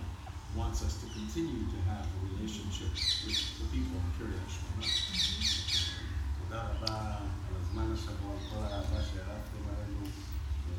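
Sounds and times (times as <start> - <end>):
speech: 0.8 - 10.7
common myna birds squawking and chattering in Kiryat Shmona: 2.7 - 3.7, 4.6 - 6.9, 7.6 - 9.4.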